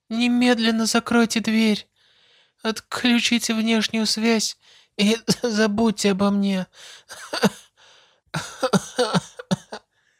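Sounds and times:
speech: 0.1 - 1.9, 2.6 - 7.6, 8.3 - 9.1
woman coughing up blood: 7.1 - 7.7, 8.4 - 9.8.

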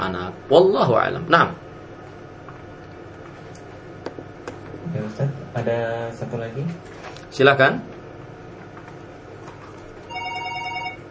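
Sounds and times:
faint hum: 0.0 - 11.0
speech: 0.1 - 1.6, 4.9 - 8.0
telephone ringing with bright warbling electronic ring: 10.1 - 11.0.

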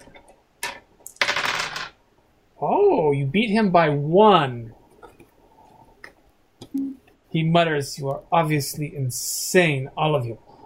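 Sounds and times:
two dice rolling on a hard surface: 0.6 - 2.0
speech: 2.6 - 4.6, 7.4 - 10.5.

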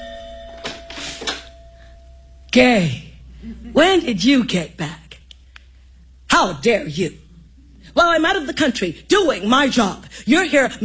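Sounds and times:
doorbell ringing inside a home: 0.0 - 2.5
steady low hum: 0.0 - 10.8
speech: 2.5 - 5.0, 6.4 - 7.2, 8.0 - 10.8.

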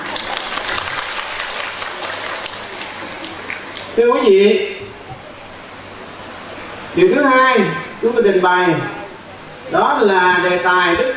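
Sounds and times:
audience applauding at a Buddhist dharma talk: 0.0 - 4.0
speech: 4.0 - 4.7, 7.0 - 9.0, 9.7 - 11.1.

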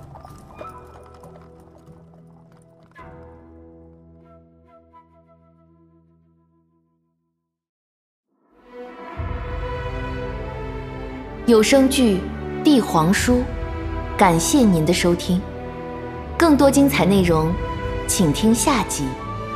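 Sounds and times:
fast hoofbeats of a horse-drawn carriage speeding along an imperial road: 0.0 - 4.0
speech: 11.5 - 13.6, 14.2 - 15.5, 16.4 - 19.2.

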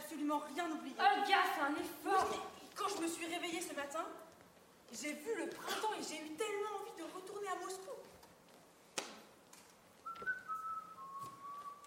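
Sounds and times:
speech: 0.2 - 4.3, 4.9 - 8.2
person whistling: 10.0 - 11.8.

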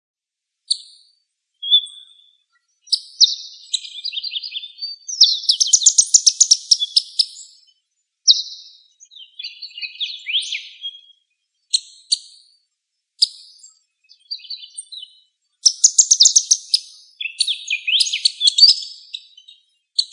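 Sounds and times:
bird song: 0.6 - 20.1.

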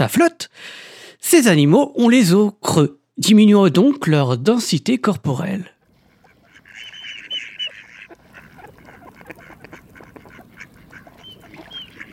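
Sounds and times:
speech: 0.0 - 5.8
mallard duck quacking: 6.0 - 12.1.

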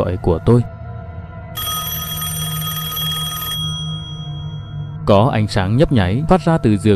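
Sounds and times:
speech: 0.0 - 0.8, 5.1 - 6.9
telephone ringing beside a bed at night: 1.6 - 5.0.

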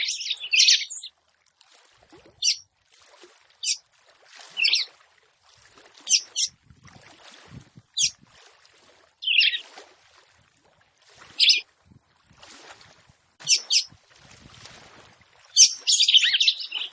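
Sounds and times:
red-cowled cardinal calls and song: 0.0 - 1.1, 6.1 - 6.5, 9.2 - 9.6, 11.4 - 11.6, 13.4 - 13.9, 15.6 - 16.9.

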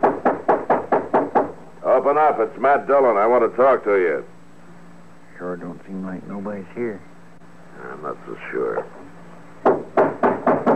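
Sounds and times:
knocking on a wooden door: 0.0 - 1.6, 9.6 - 10.7
speech: 2.0 - 4.3, 5.4 - 7.1, 7.8 - 9.0.

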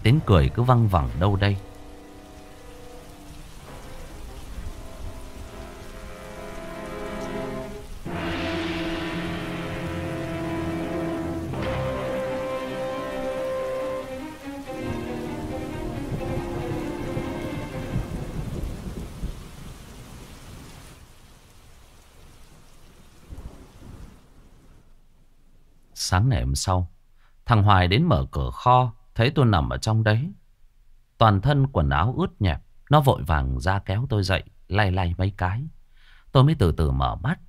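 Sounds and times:
heavy rain pouring outside: 0.0 - 25.0
speech: 0.1 - 1.7, 26.6 - 30.4, 31.2 - 37.4
thunder rolling and cracking: 8.0 - 12.9, 14.9 - 20.8.

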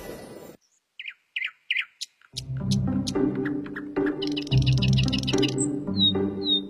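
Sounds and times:
magpie calling: 1.0 - 2.4, 3.1 - 6.6
steady musical backing with high tones: 2.4 - 6.6.

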